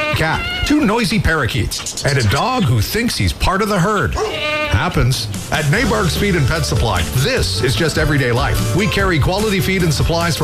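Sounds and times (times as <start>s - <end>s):
cat meowing: 0.0s - 0.8s, 4.2s - 4.9s
speech: 0.2s - 10.4s.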